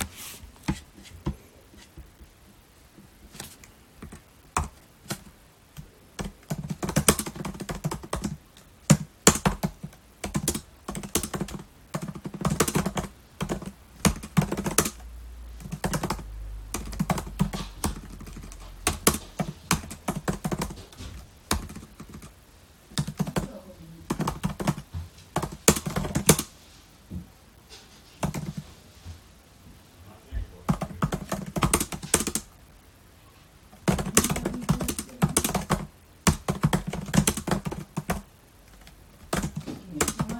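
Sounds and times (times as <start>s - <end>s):
computer keyboard typing: 3.4s - 15.0s, 15.6s - 22.3s, 22.9s - 26.5s, 28.2s - 28.6s, 30.7s - 32.5s, 33.8s - 40.3s.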